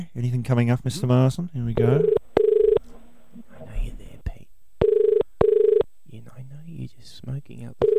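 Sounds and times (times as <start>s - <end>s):
speech: 0.0s - 2.2s, 7.3s - 7.9s
buzzing telephone ringback tone of a call to a shop in Bondi Sydney: 2.0s - 2.8s, 4.8s - 5.8s.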